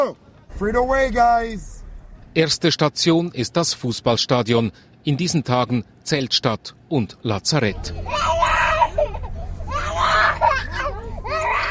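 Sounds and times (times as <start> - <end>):
speech: 0.0 - 1.7, 2.3 - 8.4
low steady hum: 0.2 - 5.2, 7.6 - 11.6
toddler screaming and crying during abscess treatment at a field hospital: 8.0 - 11.6.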